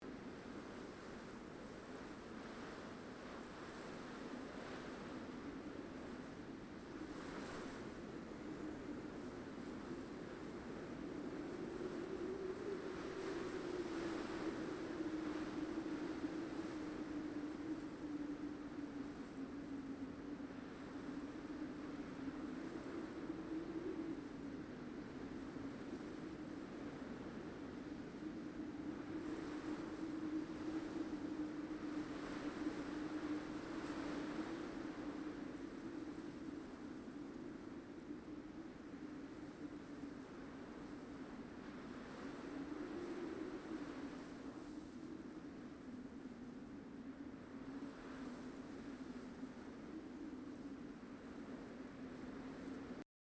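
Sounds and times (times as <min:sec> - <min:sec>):
wind ambience: 0:00.0 - 0:53.0.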